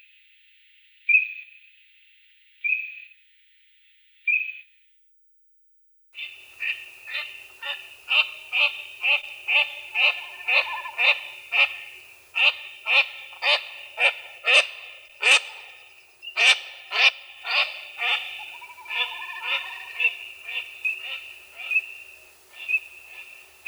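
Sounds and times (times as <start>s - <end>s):
Eurasian teal Anas crecca short ringing calls: 6.2s - 23.6s
steady high background hiss: 6.2s - 23.6s.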